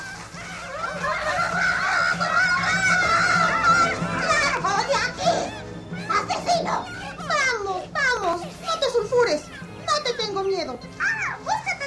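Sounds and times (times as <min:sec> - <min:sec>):
rooks squabbling over a stolen nest in tree branches: 0:00.0 - 0:11.8
laughter: 0:00.5 - 0:07.5.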